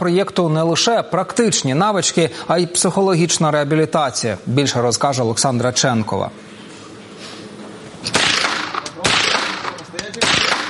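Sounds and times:
speech: 0:00.0 - 0:06.6
steady hum: 0:00.0 - 0:10.6
loud gunshots at shooting practice: 0:08.1 - 0:10.6.

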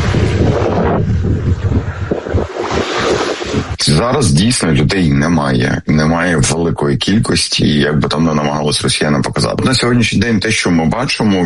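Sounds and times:
strong wind roaring across an empty seafront embankment in Mariupol Ukraine: 0:00.0 - 0:05.8
speech: 0:03.8 - 0:11.4.

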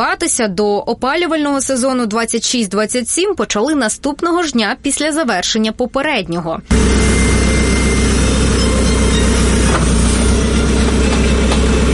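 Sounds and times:
speech: 0:00.0 - 0:07.7
heavy excavator engine droning while backfilling a trench: 0:06.6 - 0:11.9.

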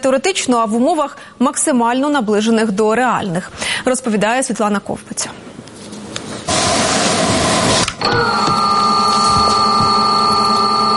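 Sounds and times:
speech: 0:00.0 - 0:05.5
small FPV drone motors spinning: 0:07.6 - 0:10.9.

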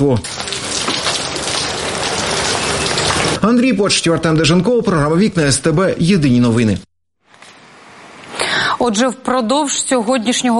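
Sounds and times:
speech: 0:00.0 - 0:00.3, 0:03.4 - 0:06.9, 0:08.8 - 0:10.5
heavy May rain pouring: 0:00.0 - 0:03.6.

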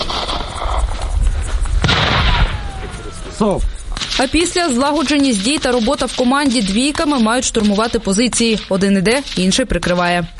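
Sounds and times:
steady wind-like noise: 0:00.0 - 0:10.3
grenade launcher shot: 0:01.8 - 0:04.3
rumbling outdoor echo: 0:01.8 - 0:04.8
speech: 0:03.4 - 0:10.3.

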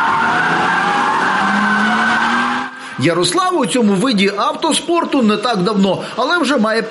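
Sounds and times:
drifting car tires skidding and squealing on a wholesale depot lot: 0:00.0 - 0:03.6
speech: 0:03.0 - 0:06.8.

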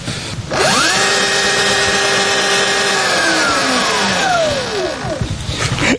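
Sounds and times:
electric motorcycle motor whirring: 0:00.0 - 0:05.6.

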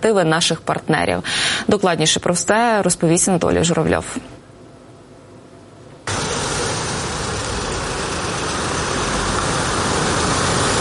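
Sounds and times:
speech: 0:00.0 - 0:04.4
evacuation vehicles and ambulances driving in: 0:06.1 - 0:10.8.

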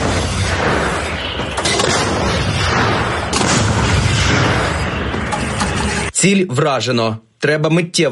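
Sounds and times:
heavy artillery gun firing: 0:00.0 - 0:06.0
speech: 0:06.2 - 0:08.1.

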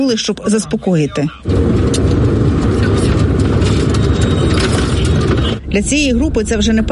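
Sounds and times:
speech: 0:00.0 - 0:02.3, 0:05.7 - 0:06.9
road noise: 0:00.0 - 0:06.9
car pulling away with a low engine rumble: 0:01.4 - 0:06.8.

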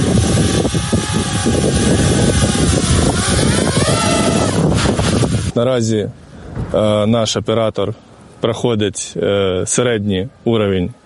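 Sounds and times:
small FPV drone motors buzzing: 0:00.0 - 0:05.6
speech: 0:05.6 - 0:11.0.

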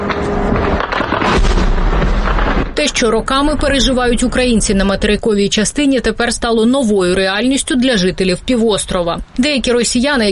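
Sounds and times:
loud explosions at night in Crimea: 0:00.0 - 0:07.4
speech: 0:02.8 - 0:10.3.

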